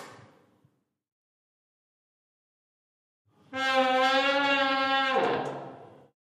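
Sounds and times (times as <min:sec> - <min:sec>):
metal door creaking: 0:03.5 - 0:06.0.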